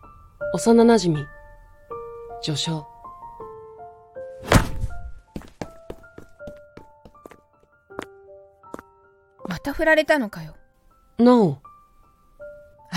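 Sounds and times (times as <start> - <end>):
speech: 0.5 - 1.4, 2.4 - 2.9, 9.7 - 10.6, 11.2 - 11.6
bag thumping hard against someone: 4.4 - 5.6.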